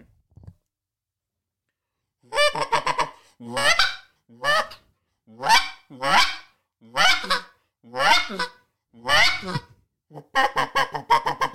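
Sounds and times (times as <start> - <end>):
imitated Eastern wild turkey hen yelps: 2.3 - 11.5.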